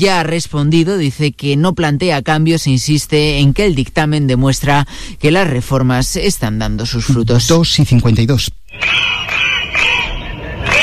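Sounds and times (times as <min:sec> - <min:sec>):
speech: 0:00.0 - 0:09.9
crowd of protesting teachers in Catalonia shouting rhythmically: 0:08.7 - 0:10.8.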